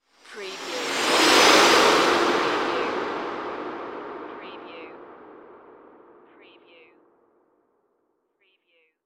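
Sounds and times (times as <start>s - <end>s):
heavy whoosh: 0.2s - 6.5s.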